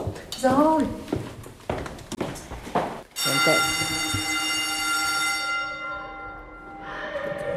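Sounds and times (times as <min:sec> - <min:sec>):
speech: 0:00.4 - 0:01.2, 0:03.4 - 0:04.1
school bell ringing at a school in a former manor house: 0:03.1 - 0:07.5.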